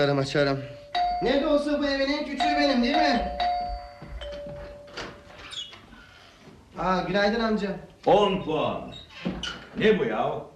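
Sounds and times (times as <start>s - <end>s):
speech: 0.0s - 3.5s, 6.8s - 9.0s, 9.8s - 10.5s
doorbell ringing with electronic tones: 0.6s - 5.5s.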